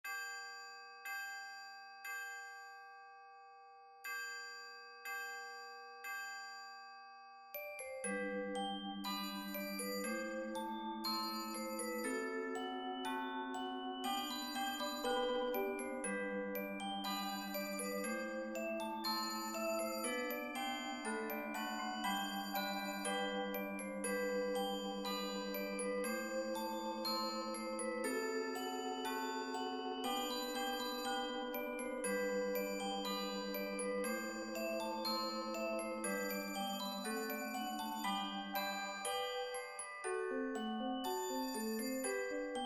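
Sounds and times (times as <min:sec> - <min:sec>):
bells: 0:00.0 - 0:42.6
chimes: 0:00.0 - 0:42.6
vibraphone: 0:04.1 - 0:42.6
xylophone: 0:04.3 - 0:42.6
two marimbas: 0:07.8 - 0:42.6.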